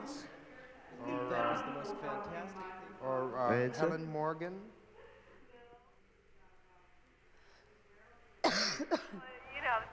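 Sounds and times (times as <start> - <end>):
speech: 1.6 - 4.8, 8.8 - 9.9
harsh raspy cough: 8.4 - 9.2.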